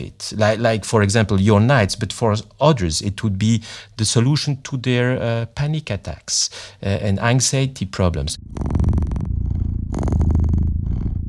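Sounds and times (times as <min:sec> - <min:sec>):
speech: 0:00.0 - 0:09.1
cat purring: 0:08.2 - 0:11.2.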